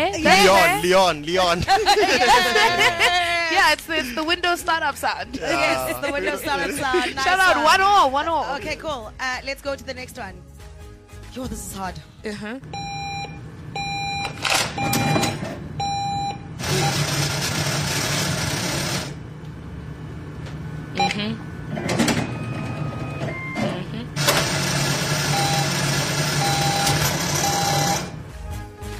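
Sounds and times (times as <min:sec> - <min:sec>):
speech: 0:00.0 - 0:10.5, 0:11.4 - 0:12.8, 0:21.1 - 0:22.0
laughter: 0:01.4 - 0:04.5, 0:05.3 - 0:09.0
money counting machine whirring in rapid fluttering runs: 0:12.8 - 0:19.2, 0:21.7 - 0:23.6, 0:24.2 - 0:28.3.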